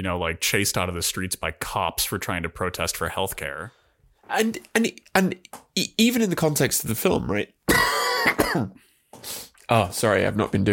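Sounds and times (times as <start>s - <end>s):
speech: 0.0s - 10.7s
harsh raspy cough: 7.7s - 8.9s.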